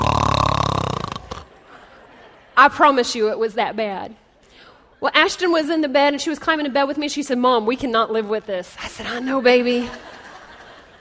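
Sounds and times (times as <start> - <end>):
woman imitating a man's crazy loud snore: 0.0 - 1.5
laughter: 1.3 - 2.6, 9.8 - 11.0
speech: 2.6 - 4.2, 5.0 - 10.1.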